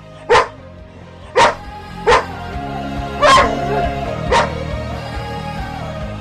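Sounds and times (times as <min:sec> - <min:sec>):
dog barking: 0:00.3 - 0:00.6, 0:01.4 - 0:02.4, 0:03.2 - 0:04.6.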